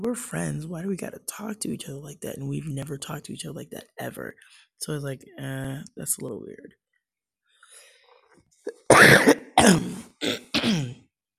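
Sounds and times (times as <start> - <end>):
speech: 0.0 - 6.8, 8.6 - 10.8
person coughing with throat-clearing: 8.7 - 11.0.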